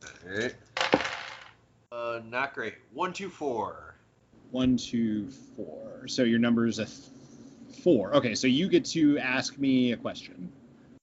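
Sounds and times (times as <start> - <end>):
speech: 0.2 - 0.7, 2.2 - 3.9, 4.5 - 7.1, 7.8 - 10.6
three dice clattering across a hard tabletop for a combat roll in a game: 0.8 - 1.6.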